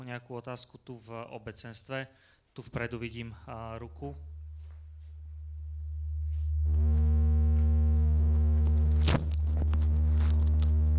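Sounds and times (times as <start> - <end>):
speech: 0.1 - 4.3
microphone audio feedback squeal: 5.4 - 10.9
burst of broadband noise: 6.1 - 10.9.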